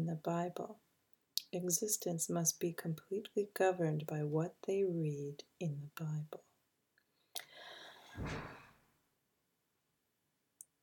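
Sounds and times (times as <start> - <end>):
speech: 0.1 - 0.9, 1.5 - 6.5, 8.2 - 8.6
door slammed by a neighbour: 8.2 - 8.8.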